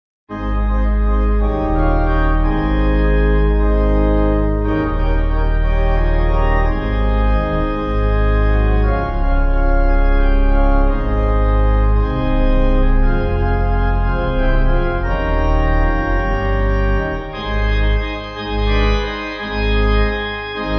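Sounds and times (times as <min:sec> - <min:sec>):
pipe organ playing A-flat pipe: 0:00.3 - 0:20.7.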